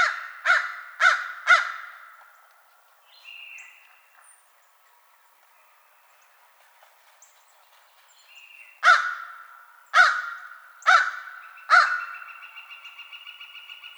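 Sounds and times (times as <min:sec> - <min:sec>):
American crow giving harsh raspy caws: 0:00.0 - 0:02.2, 0:08.8 - 0:12.4.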